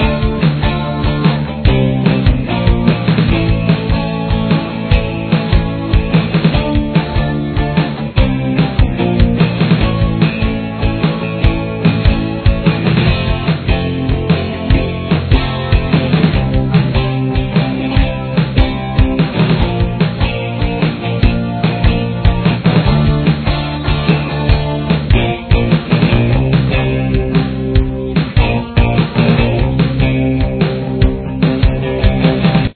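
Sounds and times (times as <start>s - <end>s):
guitar solo backing track: 0.0s - 32.7s.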